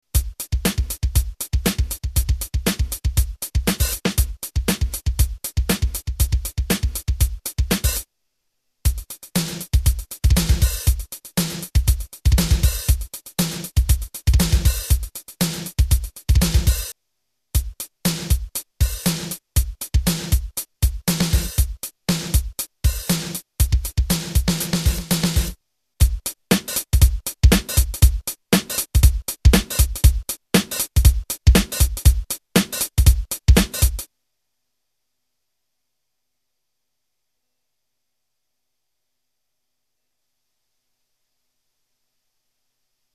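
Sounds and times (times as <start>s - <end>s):
pop hard rock urban drum beat from a multi-effects processor: 0.1s - 8.0s, 8.9s - 16.9s, 17.6s - 34.1s.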